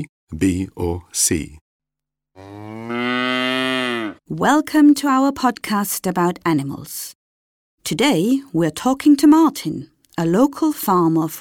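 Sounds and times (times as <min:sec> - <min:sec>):
speech: 0:00.0 - 0:01.6, 0:02.4 - 0:03.0, 0:04.3 - 0:07.2, 0:07.8 - 0:11.4
cow mooing: 0:02.4 - 0:04.2.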